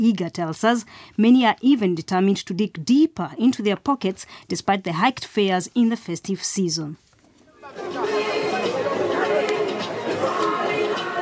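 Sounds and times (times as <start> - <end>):
speech: 0.0 - 7.0
dense crowd chatter at busy bus terminal: 7.4 - 11.2.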